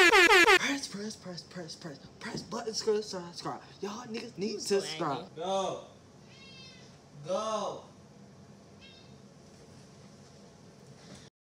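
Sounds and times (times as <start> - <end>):
speech: 1.1 - 5.9, 7.2 - 7.9
cat meowing: 6.3 - 6.9.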